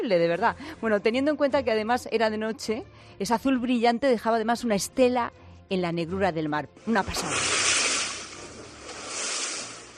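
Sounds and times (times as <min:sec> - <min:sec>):
speech: 0:00.0 - 0:07.7
dolphins swimming and splashing at sea at night: 0:06.9 - 0:09.9.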